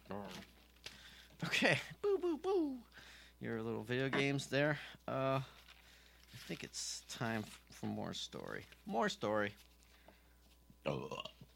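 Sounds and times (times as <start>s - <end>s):
speech: 1.6s - 5.6s, 6.4s - 9.7s, 10.8s - 11.4s
loud burp: 10.9s - 11.4s.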